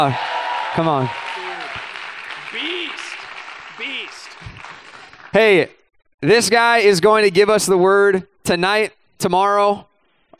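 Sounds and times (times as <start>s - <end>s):
speech: 0.0s - 1.3s, 5.3s - 10.3s
audience cheering and whooping: 0.0s - 4.9s
large crowd applauding: 0.0s - 5.6s.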